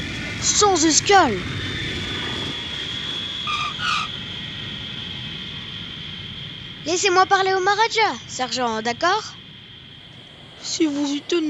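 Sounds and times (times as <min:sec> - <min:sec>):
private jet airplane coming in to land: 0:00.0 - 0:11.4
speech: 0:00.4 - 0:01.7, 0:06.9 - 0:09.4, 0:10.8 - 0:11.4
whistling tones: 0:02.6 - 0:04.4.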